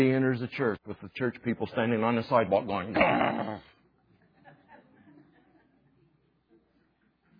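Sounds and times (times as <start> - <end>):
speech: 0.0 - 3.8
person imitating a dog's growl: 2.9 - 3.7
faint murmuring: 2.9 - 3.8.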